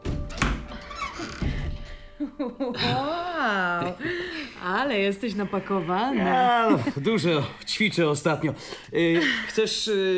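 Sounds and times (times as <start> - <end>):
wooden door being opened: 0.0 - 1.9
speech: 2.2 - 10.1.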